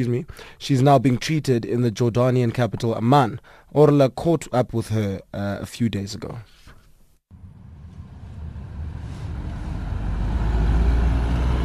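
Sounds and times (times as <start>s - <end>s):
speech: 0.0s - 6.6s
broad hiss of traffic noise: 7.3s - 11.6s
car driving through city streets of Amman: 7.3s - 11.6s.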